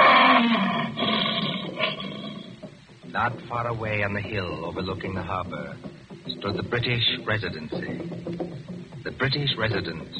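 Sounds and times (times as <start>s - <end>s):
lion roaring: 0.0s - 2.6s
speech: 3.2s - 8.6s, 9.2s - 10.1s.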